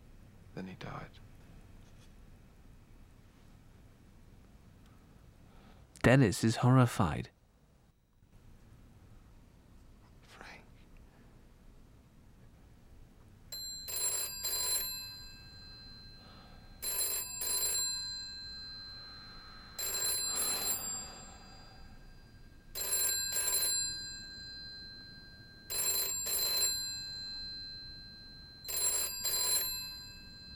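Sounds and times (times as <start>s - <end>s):
speech: 0.6s - 1.3s, 6.0s - 7.4s
telephone bell ringing: 13.5s - 30.5s.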